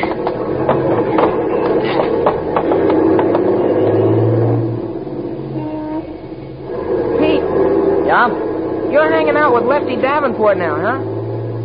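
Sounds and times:
sharp clanks and taps: 0:00.0 - 0:04.0
low rising tone: 0:00.0 - 0:11.6
truck engine rumbling and whirring pulling away in traffic: 0:00.0 - 0:11.6
speech: 0:10.0 - 0:11.1.

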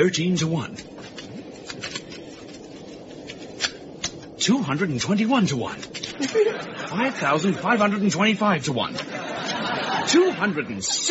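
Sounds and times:
speech: 0:00.0 - 0:01.1, 0:04.5 - 0:09.4, 0:10.1 - 0:11.0
pack of playing cards being shuffled: 0:00.5 - 0:06.5
laughter: 0:06.0 - 0:11.0.

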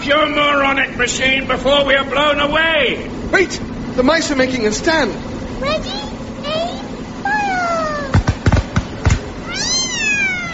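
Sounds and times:
speech: 0:00.0 - 0:06.0
sharp bangs: 0:08.0 - 0:09.4
cat yowling: 0:09.4 - 0:10.5.

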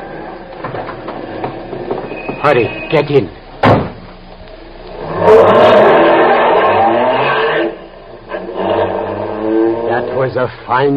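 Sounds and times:
speech: 0:02.4 - 0:03.4, 0:10.2 - 0:10.9
car engine revving as it accelerates and drives away: 0:04.9 - 0:10.4.

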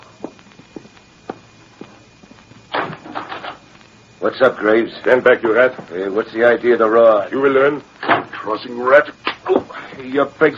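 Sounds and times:
soft footsteps: 0:00.0 - 0:03.0
speech: 0:04.2 - 0:10.5.

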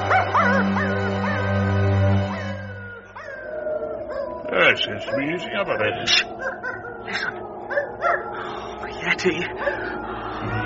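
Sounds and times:
dog howling: 0:00.0 - 0:10.6
speech: 0:04.7 - 0:06.5, 0:09.2 - 0:10.1
laughter: 0:08.9 - 0:10.6.

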